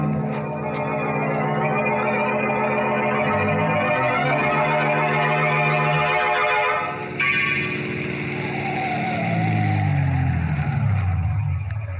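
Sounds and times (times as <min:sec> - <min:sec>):
car engine revving and pulling away at a cemetery: 0:00.0 - 0:11.9
car tire skid: 0:06.9 - 0:11.9.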